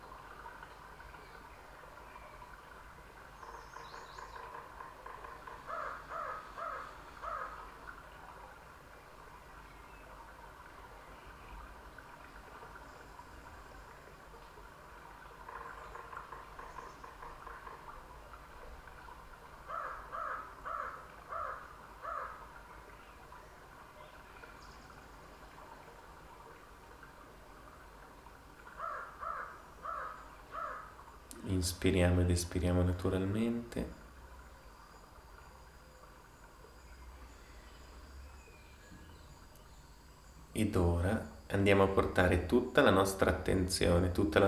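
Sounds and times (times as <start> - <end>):
quiet forest ambience in California: 0.0 - 44.4
crows cawing in a California forest: 3.4 - 8.0, 15.2 - 18.0, 19.5 - 22.7, 28.6 - 31.2
speech: 31.6 - 34.0, 40.6 - 44.4.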